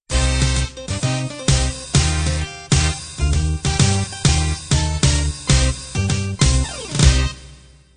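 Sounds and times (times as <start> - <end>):
swing band playing: 0.1 - 7.6.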